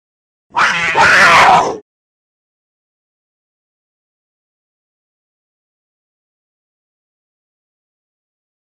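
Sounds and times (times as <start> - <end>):
puma vocalizing: 0.5 - 1.8.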